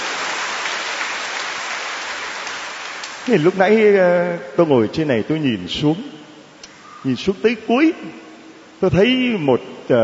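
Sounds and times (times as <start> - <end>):
audience applause: 0.0 - 3.5
speech: 3.3 - 6.2, 7.0 - 8.2, 8.8 - 10.0.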